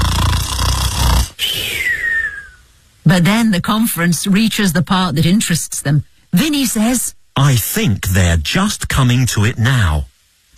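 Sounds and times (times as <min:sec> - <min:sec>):
voice imitating a low rasping snore: 0:00.0 - 0:02.2
thin whistling exhale sliding downward in pitch: 0:00.4 - 0:02.7
speech: 0:03.1 - 0:10.5.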